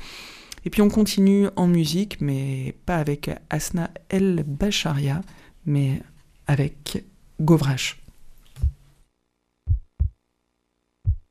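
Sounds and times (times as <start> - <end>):
speech: 0.6 - 8.0
deep heartbeat thumps: 8.6 - 8.8, 9.7 - 10.2, 11.0 - 11.2.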